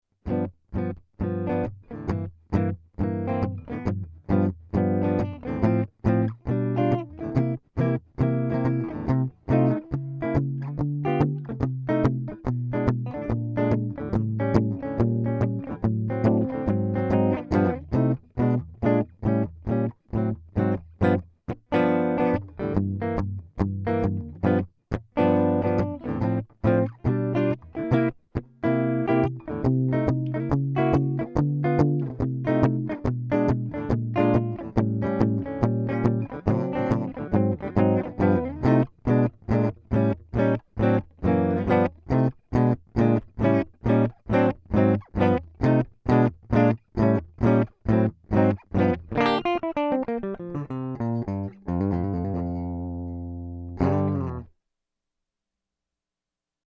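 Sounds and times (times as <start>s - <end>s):
Gibson ES336 guitar playing jazz blues: 0.2s - 54.5s.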